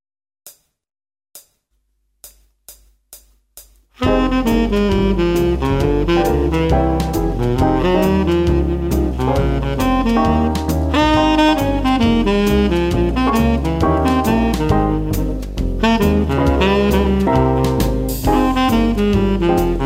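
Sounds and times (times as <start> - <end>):
jazz melody: 4.0 - 19.8.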